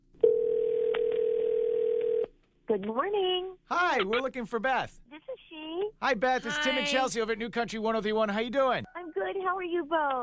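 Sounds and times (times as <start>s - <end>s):
electronic telephone tone of a call ringing out: 0.2s - 2.3s
speech: 2.7s - 10.2s.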